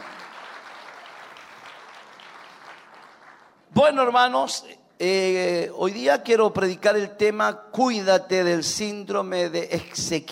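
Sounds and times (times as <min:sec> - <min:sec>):
crowd of people applauding: 0:00.0 - 0:03.7
speech: 0:03.8 - 0:10.3.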